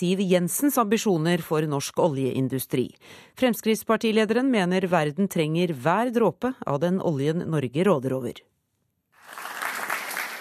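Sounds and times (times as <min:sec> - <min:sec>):
speech: 0:00.0 - 0:08.5
audience applause in a hall as a politician steps up to the lectern: 0:09.2 - 0:10.3.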